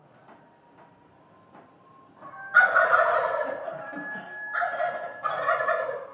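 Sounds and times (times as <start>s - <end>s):
wild turkeys gobbling: 2.2s - 6.1s.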